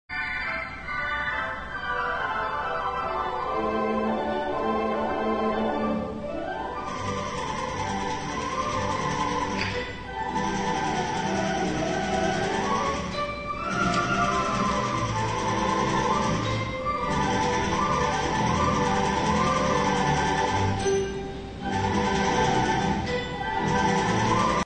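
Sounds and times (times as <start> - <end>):
theatre organ: 0.1 - 24.6
typewriter: 6.9 - 20.8, 21.7 - 24.6.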